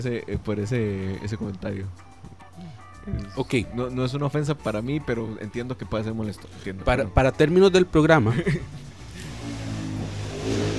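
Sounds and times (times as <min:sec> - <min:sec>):
speech: 0:00.0 - 0:08.9
motorcycle engine revving outside: 0:08.9 - 0:10.7.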